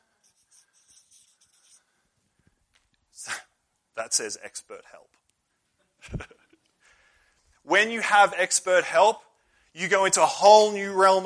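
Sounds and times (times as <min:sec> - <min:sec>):
marker scratching and squeaking across a board: 0:00.0 - 0:01.9
speech: 0:04.0 - 0:05.3, 0:06.0 - 0:06.4, 0:07.7 - 0:11.2.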